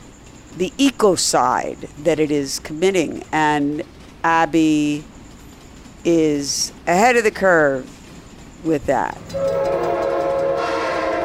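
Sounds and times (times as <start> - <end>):
train cars rumbling and rattling: 0.0 - 11.2
speech: 0.6 - 5.1, 6.0 - 8.0, 8.6 - 10.0
train horn: 9.2 - 11.2.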